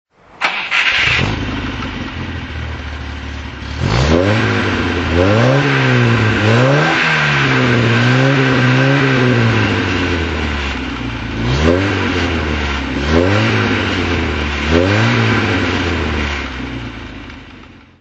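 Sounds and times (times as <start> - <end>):
Volvo P1800 engine throttle: 0.4 - 17.9.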